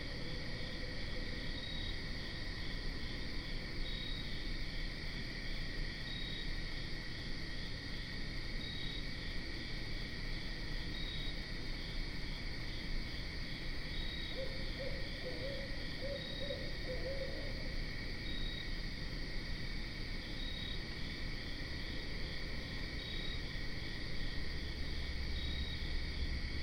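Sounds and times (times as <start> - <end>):
insects chirring: 0.0 - 26.6
barred owl hooting: 14.3 - 17.8.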